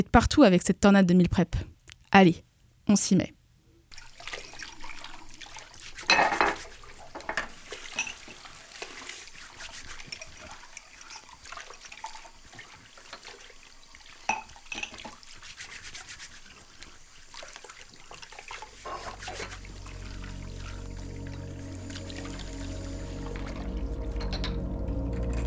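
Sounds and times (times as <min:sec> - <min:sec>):
speech: 0:00.0 - 0:03.4
water splashing and trickling: 0:03.9 - 0:25.4
sponge scrubbing dishes: 0:05.2 - 0:10.6, 0:15.2 - 0:23.9
dishes clinking while washed by hand: 0:06.0 - 0:08.4, 0:14.3 - 0:15.1, 0:24.2 - 0:24.6.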